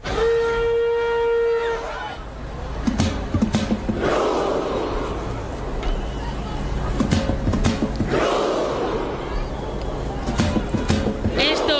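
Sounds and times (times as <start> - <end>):
sustained horn tone at a football match: 0.0 - 2.2
football fans shouting in unison at a World Cup match: 0.0 - 11.7.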